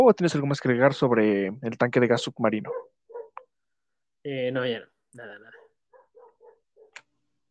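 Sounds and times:
speech: 0.0s - 3.0s, 4.2s - 5.6s
dogs barking: 2.6s - 3.5s, 5.4s - 7.0s.

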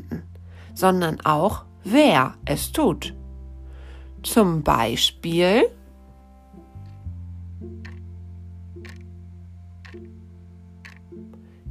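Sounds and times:
sustained low humming tone: 0.0s - 11.6s
speech: 0.1s - 3.2s, 4.2s - 5.8s
clock ticking: 7.6s - 8.1s, 8.8s - 9.2s, 9.8s - 11.4s.

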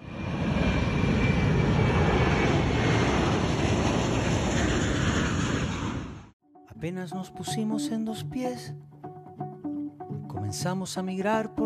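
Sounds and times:
passenger airplane taking off, jet engines roaring: 0.0s - 6.4s
speech: 6.8s - 8.9s, 10.5s - 11.6s.

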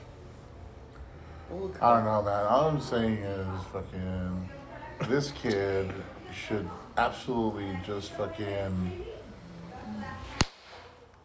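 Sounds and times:
low murmur of noise: 0.0s - 11.2s
speech: 1.5s - 9.1s
sharp loud slap: 10.4s - 11.0s.

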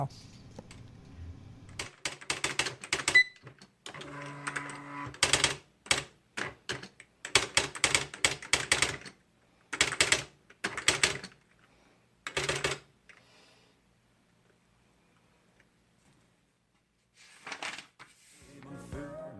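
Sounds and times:
speech: 0.0s - 0.4s
electric typewriter typing in quick bursts of keystrokes: 1.7s - 11.4s, 12.3s - 12.9s.

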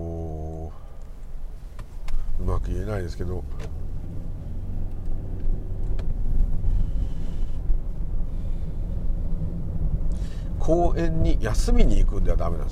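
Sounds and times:
low rumble of road traffic with cars idling: 0.0s - 12.6s
speech: 2.5s - 3.8s, 10.6s - 12.6s.

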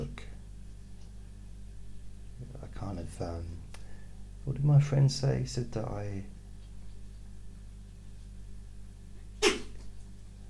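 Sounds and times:
low steady hum: 0.0s - 10.4s
speech: 3.0s - 3.7s, 4.4s - 6.4s
short sharp loud sneeze: 9.4s - 9.8s.

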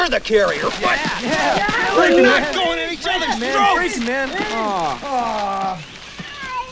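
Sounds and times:
speech: 0.1s - 5.9s
cat meowing: 2.0s - 2.4s.

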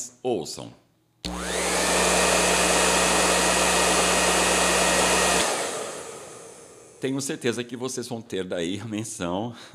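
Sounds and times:
speech: 0.2s - 1.4s, 7.0s - 9.7s
hair dryer running: 1.2s - 7.0s.

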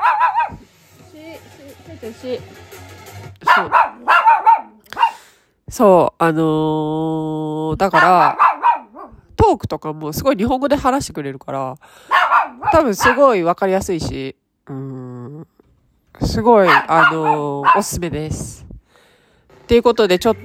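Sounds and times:
dog barking: 0.0s - 0.6s, 3.4s - 5.3s, 7.9s - 9.2s, 12.0s - 13.3s, 16.6s - 18.1s
speech: 2.0s - 2.8s, 3.5s - 4.1s, 5.7s - 8.4s, 9.5s - 15.5s, 16.2s - 18.7s, 19.7s - 20.4s.

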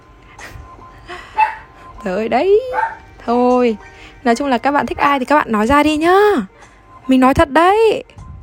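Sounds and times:
household dog barking downstairs: 1.4s - 1.7s, 2.7s - 3.0s
speech: 2.0s - 8.2s.

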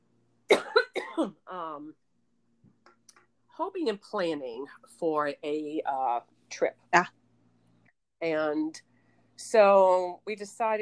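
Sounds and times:
person coughing: 0.5s - 1.4s
speech: 1.2s - 2.0s, 3.6s - 7.2s, 8.2s - 10.8s.

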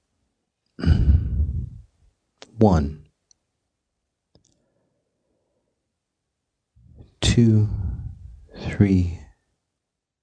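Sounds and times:
deep exhale after holding breath: 0.8s - 1.9s, 6.9s - 8.8s
speech: 2.6s - 3.0s, 7.4s - 7.8s, 8.8s - 9.2s.

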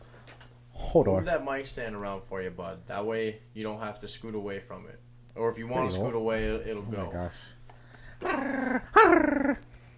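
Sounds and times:
speech: 0.9s - 7.6s, 8.2s - 9.7s
person imitating a small dog growling: 8.2s - 9.6s.

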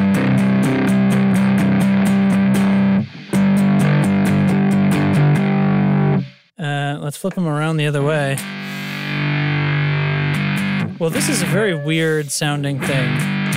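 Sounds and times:
distorted electric guitar strumming chords through a distortion pedal: 0.0s - 6.5s, 7.3s - 13.5s
speech: 7.2s - 9.5s, 11.0s - 13.5s.

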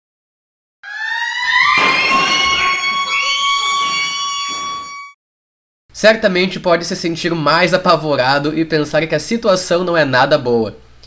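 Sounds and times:
emergency siren wailing: 0.8s - 5.2s
speech: 6.0s - 10.8s.

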